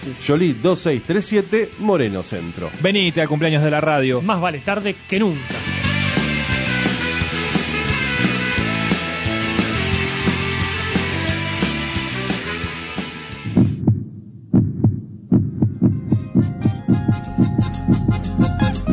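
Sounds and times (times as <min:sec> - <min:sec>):
speech: 0:00.0 - 0:05.8
dense music: 0:00.0 - 0:18.9
deep loud heartbeat thumps in double pulses: 0:13.4 - 0:18.7.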